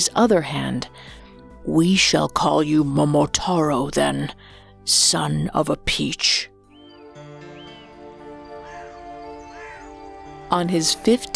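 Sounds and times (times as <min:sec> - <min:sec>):
speech: 0:00.0 - 0:06.5, 0:10.5 - 0:11.3
steady sustained tonal background: 0:00.0 - 0:11.3
birds chirping: 0:06.5 - 0:11.3.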